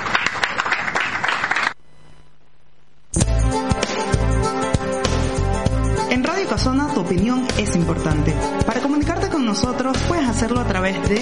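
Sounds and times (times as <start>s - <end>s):
crowd applause: 0.0s - 1.8s
upbeat music with a heavy bass beat: 3.2s - 11.2s
speech: 6.5s - 11.2s.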